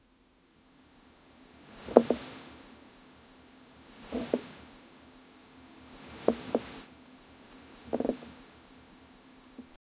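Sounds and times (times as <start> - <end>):
wood sliding softly over cloth: 1.7 - 2.4, 4.0 - 4.6, 6.0 - 6.9, 7.6 - 8.5.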